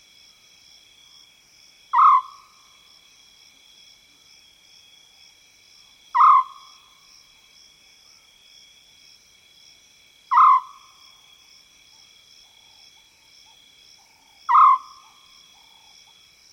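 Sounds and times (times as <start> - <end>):
wild African scops owl calling in savanna woodland: 1.9 - 2.5, 6.2 - 6.7, 10.3 - 10.8, 14.5 - 15.2.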